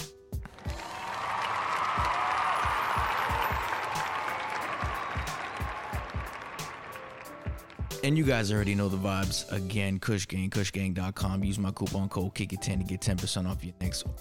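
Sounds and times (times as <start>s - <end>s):
louder closer hand claps and thumps: 0.4s - 8.0s
crowd applause: 0.4s - 8.4s
speech: 8.0s - 14.1s.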